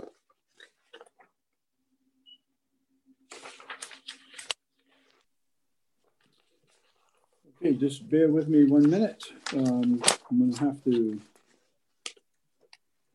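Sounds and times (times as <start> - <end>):
stapled printed paper sheets rustling and crinkling: 3.3 - 5.2, 6.0 - 12.2
speech: 7.6 - 11.3.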